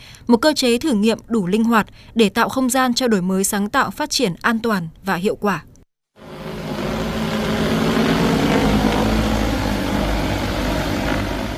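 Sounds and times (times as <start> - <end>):
speech: 0.3 - 5.7
drone engine whirring as it lifts off: 6.2 - 11.5.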